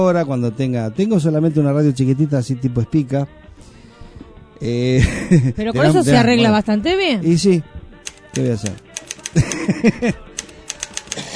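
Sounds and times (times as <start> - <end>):
speech: 0.0 - 3.7, 4.6 - 7.7, 8.3 - 10.3
laughter: 4.9 - 6.0, 9.2 - 10.5
keyboard keys clicking: 8.0 - 9.7, 10.3 - 11.3.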